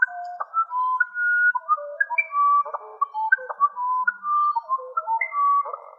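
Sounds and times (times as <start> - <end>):
Musician wren singing clear whistled notes: 0.0 - 5.9.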